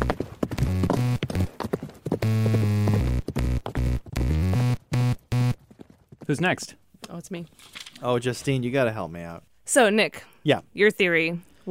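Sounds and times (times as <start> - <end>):
horse hooves clip-clopping: 0.0 - 6.7
steady tonal humming: 2.2 - 5.6
speech: 6.3 - 11.6.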